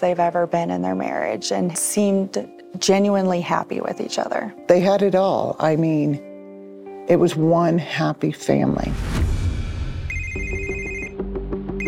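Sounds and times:
speech: 0.0 - 6.3, 7.1 - 9.3
telephone ringing with a steady electronic trill: 10.1 - 11.2.

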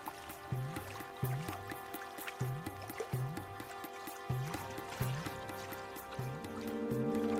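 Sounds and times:
mountain stream babbling over stones: 0.0 - 7.3.

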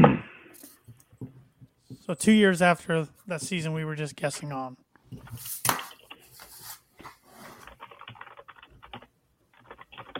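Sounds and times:
speech: 2.1 - 5.6
rapid typing on a computer keyboard: 7.6 - 10.1.

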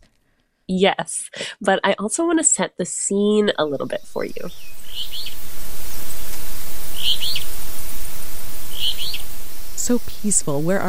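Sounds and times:
speech: 0.7 - 5.4, 9.9 - 10.8
steady low rushing background noise: 3.4 - 10.8
bird calls in boreal caribou range in the Northwest Territories: 3.6 - 10.7.

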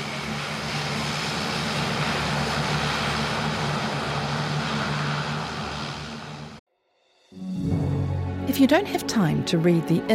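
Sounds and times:
airplane engine roaring as the plane departs: 0.0 - 6.6, 7.4 - 10.1
speech: 8.6 - 10.1.

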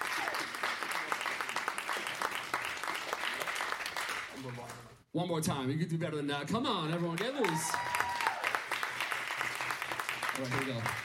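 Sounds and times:
room full of people clapping: 0.0 - 4.7, 6.9 - 11.0
speech: 5.2 - 7.9, 10.4 - 11.0.

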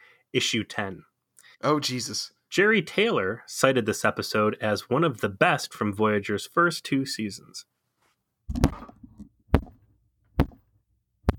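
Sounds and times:
speech: 0.3 - 7.8
head hitting against a microphone: 8.5 - 11.3.

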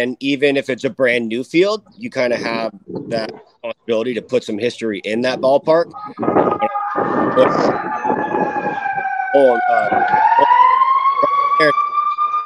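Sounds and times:
speech: 0.0 - 10.5, 11.6 - 11.8
traffic rumbling: 0.0 - 12.4
emergency vehicle siren wailing: 5.9 - 12.4.

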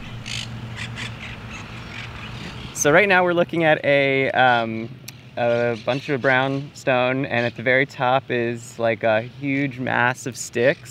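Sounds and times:
city parrots squawking: 0.0 - 2.8
low rumble of city noise: 0.0 - 10.8
speech: 2.8 - 10.8.

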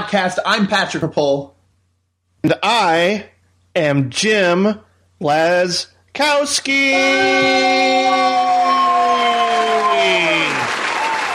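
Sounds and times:
speech: 0.0 - 1.6, 2.4 - 8.3
droning horn-like tone sliding down in pitch: 6.8 - 8.8
live concert crowd cheering and applauding: 6.9 - 11.3.

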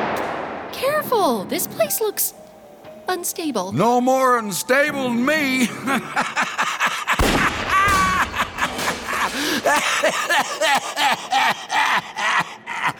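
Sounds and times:
speech: 0.8 - 2.5, 3.1 - 7.4, 9.6 - 12.2
laughter: 5.6 - 12.9
burst of gunfire in a video game: 7.2 - 10.3.

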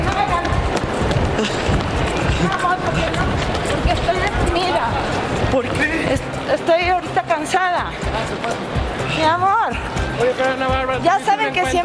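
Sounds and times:
hurried footsteps of a group of reporters running in an airport: 0.0 - 9.0
busy indoor crowd murmur in an airport: 0.0 - 11.8.

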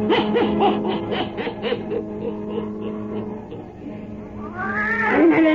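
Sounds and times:
laughter: 0.1 - 4.0
black cat meowing: 4.3 - 5.5.

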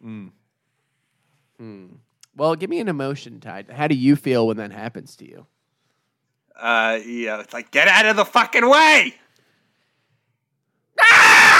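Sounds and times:
speech: 1.6 - 5.6, 6.6 - 9.2
person screaming in frustration: 11.0 - 11.5.

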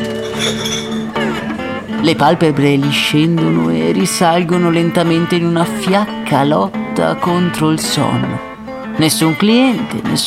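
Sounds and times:
glasses clinking while being dried: 0.0 - 1.5
speech: 0.4 - 0.8, 2.0 - 10.2.

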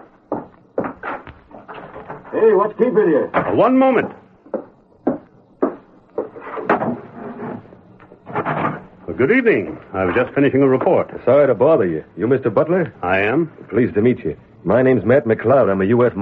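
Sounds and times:
door opening and closing: 0.0 - 2.6, 6.2 - 8.9
speech: 2.3 - 4.2, 9.2 - 16.2.

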